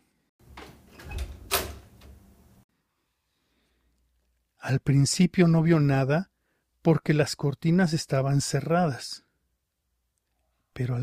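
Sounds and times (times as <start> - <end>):
door being opened with a slow rumbling scrape: 0.5 - 2.2
speech: 4.6 - 9.2, 10.8 - 11.0.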